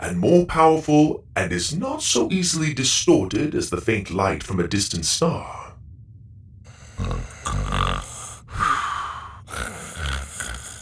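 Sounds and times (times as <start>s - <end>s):
speech: 0.1s - 5.6s
person fake snoring: 6.7s - 10.8s.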